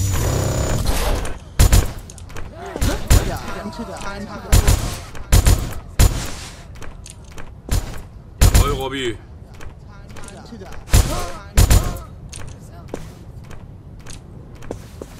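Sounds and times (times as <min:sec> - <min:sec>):
video game gunfire shooting through a wall: 0:00.0 - 0:02.1, 0:02.7 - 0:03.6, 0:04.5 - 0:06.8, 0:07.7 - 0:08.9, 0:10.8 - 0:12.1
laughter: 0:02.4 - 0:06.0
speech: 0:04.2 - 0:04.7, 0:08.8 - 0:09.3.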